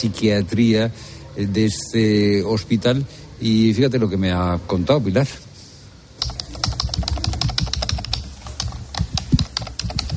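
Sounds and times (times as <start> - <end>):
speech: 0.0 - 5.5
typing on a computer keyboard in a hospital office: 6.2 - 10.1.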